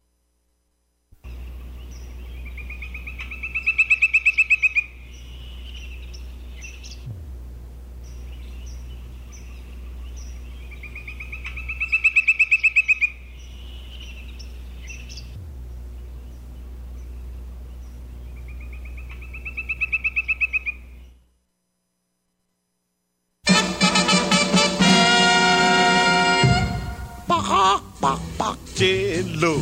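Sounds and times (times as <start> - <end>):
steady low hum: 1.2 - 22.8, 23.5 - 29.5
woodpecker calling in chirping bursts: 1.3 - 7.1, 8.0 - 21.3
speech: 28.8 - 29.5.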